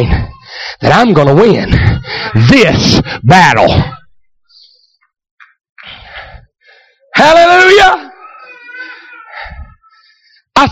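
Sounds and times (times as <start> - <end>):
speech: 0.0 - 0.2, 0.8 - 4.0, 7.2 - 8.0
small child crying in the audience: 1.6 - 2.5, 7.8 - 10.2.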